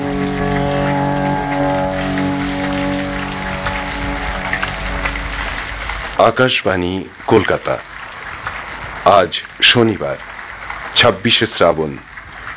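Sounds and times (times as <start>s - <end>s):
rain falling: 0.0s - 12.5s
speech: 6.2s - 7.9s, 9.0s - 10.3s, 11.0s - 12.5s.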